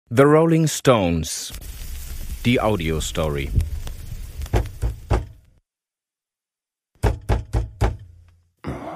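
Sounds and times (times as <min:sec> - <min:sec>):
speech: 0:00.1 - 0:01.8, 0:02.4 - 0:03.8
firm knocking on a door: 0:04.5 - 0:05.4, 0:07.0 - 0:08.1.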